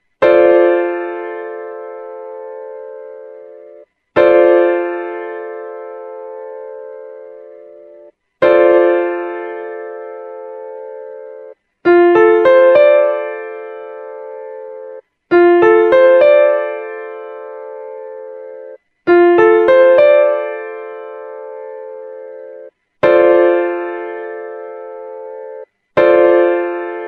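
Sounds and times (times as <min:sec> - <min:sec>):
F6 piano chord: 0:00.2 - 0:27.0.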